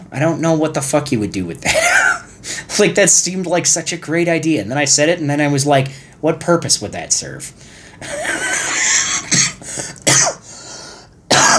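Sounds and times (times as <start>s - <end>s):
speech: 0.1s - 8.4s
person coughing raspy and throaty: 1.6s - 2.4s, 8.0s - 10.5s, 11.3s - 11.5s.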